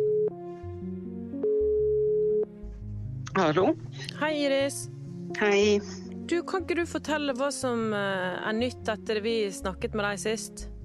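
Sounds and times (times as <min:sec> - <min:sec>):
telephone ringback tone of outgoing call: 0:00.0 - 0:00.4, 0:01.4 - 0:02.5
soft music: 0:00.0 - 0:10.8
speech: 0:03.4 - 0:10.7.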